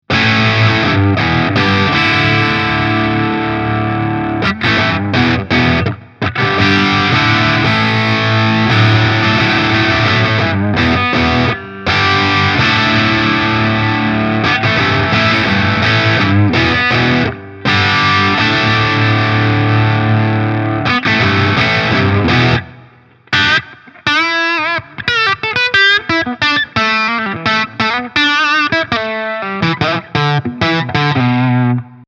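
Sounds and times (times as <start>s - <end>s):
distorted electric guitar with humbucker pickup: 0.0s - 32.0s.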